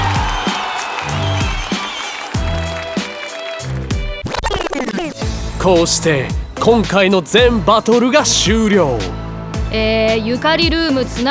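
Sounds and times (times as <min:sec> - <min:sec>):
audience applause and cheering: 0:00.0 - 0:05.2
driving rhythmic music with heavy bass hits: 0:00.0 - 0:11.3
speech: 0:05.6 - 0:11.3.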